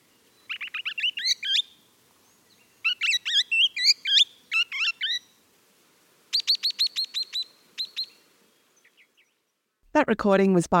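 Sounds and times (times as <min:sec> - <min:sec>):
swift parrot calls: 0:00.5 - 0:01.7, 0:02.8 - 0:05.3, 0:06.3 - 0:08.2
speech: 0:10.0 - 0:10.7.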